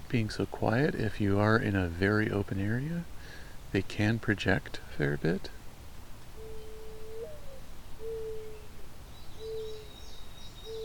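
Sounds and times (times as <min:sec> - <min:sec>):
steady hiss: 0:00.0 - 0:10.8
speech: 0:00.1 - 0:05.6
mourning dove cooing: 0:06.3 - 0:10.8
faint higher bird chatter: 0:06.4 - 0:10.8.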